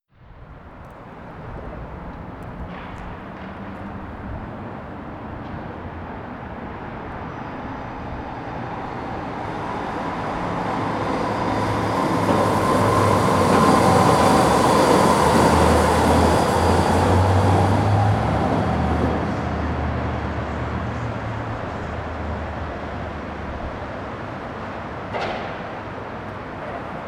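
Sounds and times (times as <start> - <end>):
traffic noise in Vancouver: 0.2 - 27.0.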